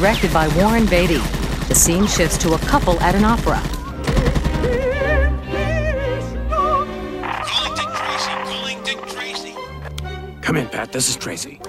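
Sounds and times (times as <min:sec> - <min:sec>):
speech: 0:00.0 - 0:03.7, 0:10.5 - 0:11.6
machine-gun fire with bullets sprayed into a wall: 0:00.0 - 0:05.0
sustained musical tones: 0:03.8 - 0:11.6.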